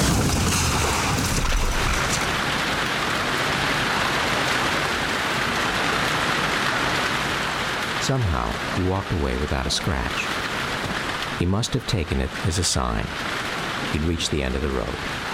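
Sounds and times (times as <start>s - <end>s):
deep rumble: 0.0s - 2.5s
heavy June rain pouring down: 0.0s - 15.3s
speech: 8.1s - 10.5s, 11.4s - 15.3s.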